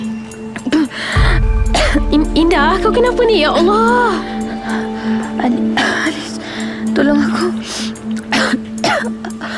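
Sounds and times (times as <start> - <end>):
steady low musical drone: 0.0 - 9.0
deep rumble: 1.2 - 6.4
speech: 2.0 - 4.8, 5.4 - 6.0, 7.0 - 7.9
person coughing harshly: 8.3 - 9.2.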